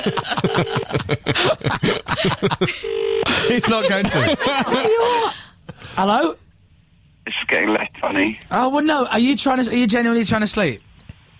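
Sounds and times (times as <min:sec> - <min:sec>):
people chuckling: 0:00.0 - 0:05.3
speech: 0:00.0 - 0:06.4, 0:07.3 - 0:10.9
telephone ringing tone on a call line: 0:02.8 - 0:03.7.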